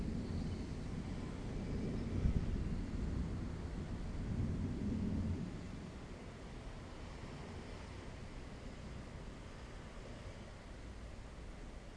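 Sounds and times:
deep rolling thunder outdoors on a hot humid day: 0.0s - 6.0s
rain-like noise: 0.0s - 11.9s.

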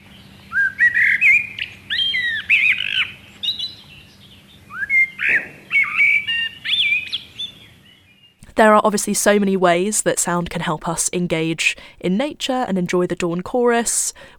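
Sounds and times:
songbird singing mellow whistled notes leaping in pitch: 0.1s - 8.4s
speech: 8.6s - 14.3s.

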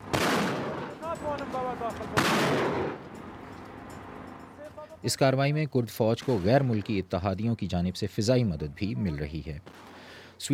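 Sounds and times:
artillery shelling during a military advance: 0.0s - 1.0s, 2.2s - 3.0s
speech: 1.7s - 3.1s, 5.0s - 10.5s.

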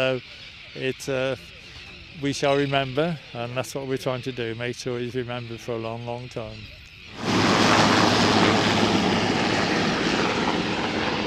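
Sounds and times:
speech: 0.0s - 1.6s, 2.2s - 7.2s
helicopter engine and rotors roaring while taking off and flying away: 7.1s - 11.2s.

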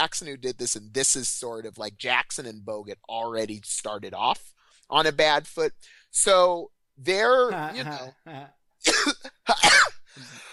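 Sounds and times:
speech: 0.0s - 10.5s
man coughing after laughing: 7.7s - 10.5s.

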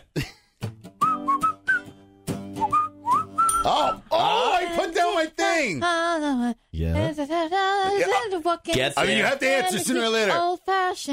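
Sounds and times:
person whistling a tune: 1.0s - 4.0s
speech: 3.6s - 11.1s.

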